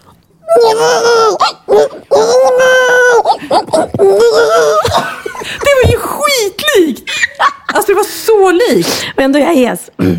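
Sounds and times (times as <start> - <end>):
woman imitating a baby crying by screaming into her arm: 0.4 - 5.2
speech: 0.5 - 2.0, 4.0 - 4.8, 6.4 - 10.1
short catches of breath: 8.8 - 9.2.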